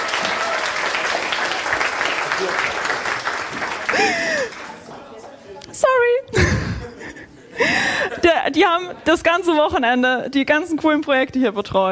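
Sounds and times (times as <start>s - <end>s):
audience applause: 0.0s - 5.2s
laughter: 3.5s - 5.1s, 6.3s - 8.6s
speech: 8.5s - 11.9s.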